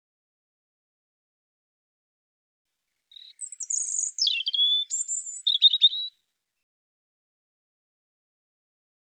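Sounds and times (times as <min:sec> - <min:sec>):
European robin singing: 0:03.1 - 0:06.1.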